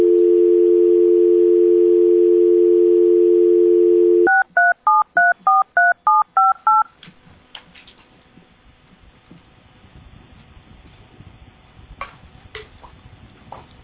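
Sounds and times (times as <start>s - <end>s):
steady telephone dial tone: 0.0s - 6.8s
telephone keypad beeps: 4.3s - 6.9s.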